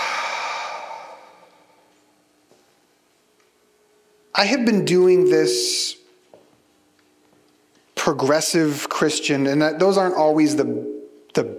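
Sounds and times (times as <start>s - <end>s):
deep breath in and out: 0.0s - 1.9s
speech: 4.4s - 6.0s, 8.1s - 11.5s.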